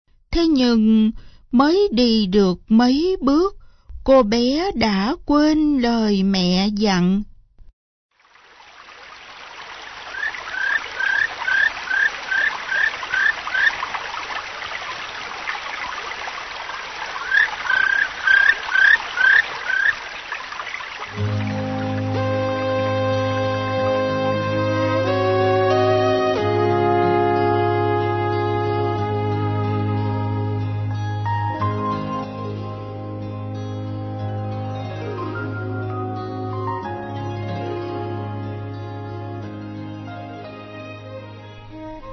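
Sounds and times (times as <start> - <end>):
speech: 0.4 - 7.3
babbling forest stream: 8.1 - 26.2, 34.8 - 42.1
soft sustained music: 21.1 - 42.1.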